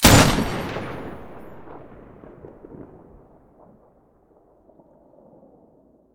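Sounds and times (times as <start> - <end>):
PKM machine gun muzzle blast: 0.0 - 2.6.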